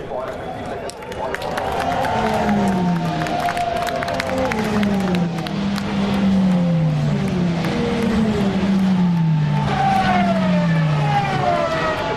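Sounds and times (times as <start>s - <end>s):
crowd murmur at Le Mans: 0.0s - 12.1s
race cars roaring past at racing speeds at Le Mans with a Peugeot leading: 0.4s - 12.1s.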